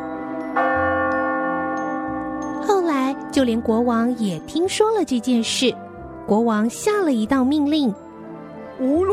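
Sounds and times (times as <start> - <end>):
single bell ringing: 0.0 - 5.6
speech: 3.4 - 8.0, 8.8 - 9.1.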